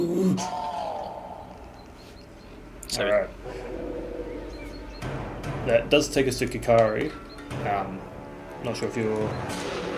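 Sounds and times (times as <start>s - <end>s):
deep rumbling monster growl sound effect: 0.2s - 1.6s
speech: 0.4s - 0.6s, 2.9s - 3.7s, 5.7s - 9.9s.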